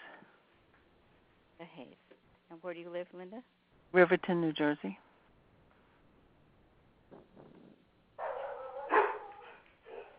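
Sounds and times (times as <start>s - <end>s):
faint noise: 0.0s - 10.1s
speech: 1.6s - 5.1s
dog barking over a conference call: 8.2s - 10.1s.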